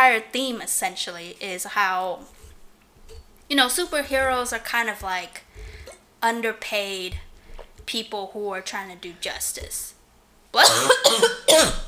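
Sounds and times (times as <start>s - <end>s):
speech: 0.1s - 2.4s, 3.1s - 7.3s, 7.9s - 11.8s
dry raspy cough: 10.6s - 11.8s.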